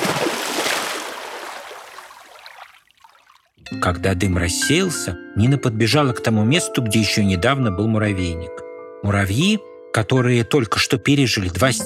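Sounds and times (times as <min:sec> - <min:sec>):
bucket of water poured onto smouldering grass: 0:00.0 - 0:03.6
speech: 0:03.7 - 0:11.8.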